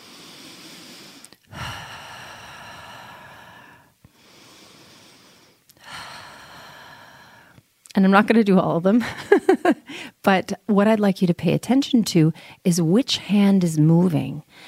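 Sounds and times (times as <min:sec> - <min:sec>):
slow deep breathing during a breathing exercise: 0:00.0 - 0:07.6
speech: 0:08.0 - 0:09.3, 0:10.0 - 0:14.6.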